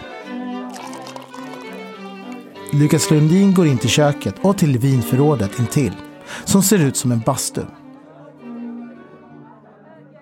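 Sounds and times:
champagne poured into a glass by serving staff at a gathering: 0.0 - 3.9
light fizz of champagne: 0.7 - 2.4
speech: 2.7 - 7.8.

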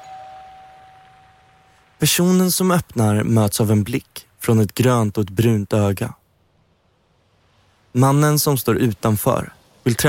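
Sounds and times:
doorbell ringing at newspaper offices in Copenhagen: 0.0 - 1.5
speech: 2.0 - 6.2, 7.9 - 10.0.

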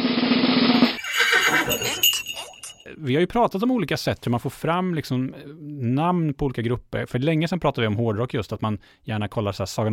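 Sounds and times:
drum roll: 0.0 - 2.1
fanfare jingle: 1.0 - 3.0
speech: 3.0 - 9.9.

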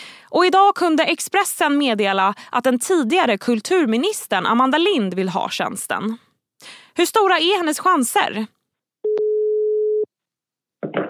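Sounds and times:
speech: 0.3 - 8.6
telephone ringback tone of an outgoing call: 9.1 - 10.1.

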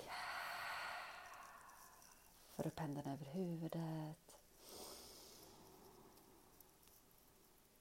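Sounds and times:
long deep breath: 0.0 - 2.3, 4.6 - 6.5
speech: 2.6 - 4.8.

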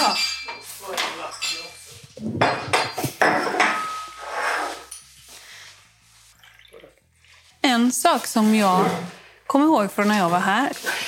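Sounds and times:
dishes and cutlery clinking and clattering: 0.0 - 5.2
water pouring into a glass: 6.4 - 7.0
speech: 8.0 - 10.9.

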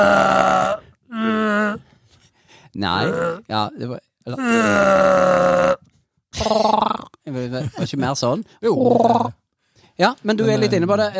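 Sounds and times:
person imitating a Wookiee growl: 0.0 - 1.8, 2.9 - 3.5, 4.4 - 5.8, 6.4 - 7.2, 8.8 - 9.4
speech: 2.8 - 9.4, 10.0 - 11.1.

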